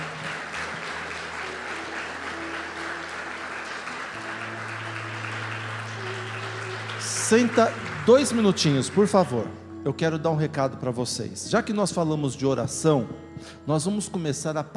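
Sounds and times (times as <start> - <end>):
audience applauding: 0.0 - 9.6
sustained low organ or keyboard tone: 0.0 - 14.6
speech: 7.3 - 14.7.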